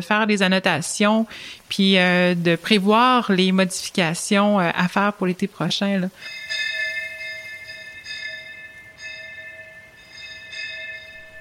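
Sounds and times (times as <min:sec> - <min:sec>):
speech: 0:00.0 - 0:06.7
dinner bell ringing: 0:06.1 - 0:11.3.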